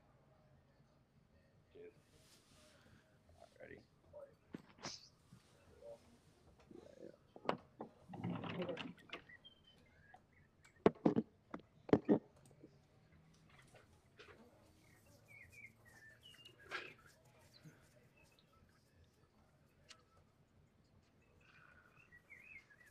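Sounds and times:
pet birds chirping: 4.7 - 6.0, 8.9 - 11.1, 14.6 - 19.0, 21.0 - 22.8
knocks and clatters: 7.4 - 9.4, 10.7 - 12.5.

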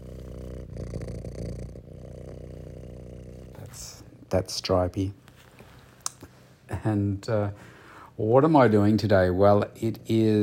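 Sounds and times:
cat purring: 0.0 - 4.4
speech: 3.8 - 5.2, 6.8 - 10.4
soft rustle: 5.2 - 6.6.

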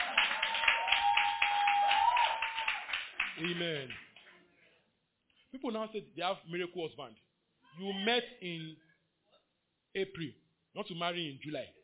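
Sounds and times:
audience clapping hands: 0.0 - 4.4
speech: 3.4 - 4.1, 5.5 - 7.2, 7.8 - 8.8, 10.0 - 11.8.

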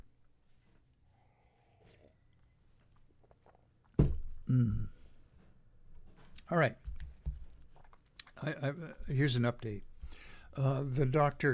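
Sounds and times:
soft slurping and mouth sounds: 0.9 - 4.0
person sipping a drink: 1.0 - 5.0
knock or thud: 4.0 - 4.3
speech: 4.5 - 4.9, 6.5 - 6.9, 8.4 - 11.5.

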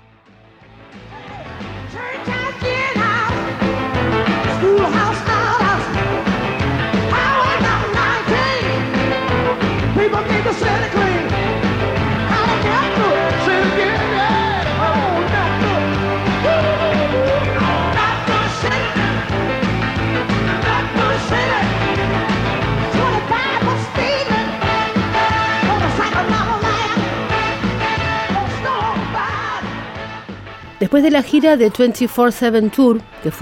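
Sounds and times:
crowd-filled stadium ambience: 0.0 - 30.4
live full band playing in a stadium: 0.6 - 33.4
woman singing live in a stadium: 1.9 - 3.4, 4.6 - 6.0, 7.1 - 8.9, 12.3 - 15.8, 16.4 - 19.2, 22.9 - 25.0, 25.6 - 27.6, 28.3 - 29.7
speech: 30.9 - 33.4.

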